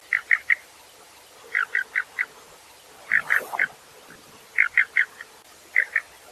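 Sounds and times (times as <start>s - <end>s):
Collared Bush Robin calls in Taiwan: 1.5s - 6.2s.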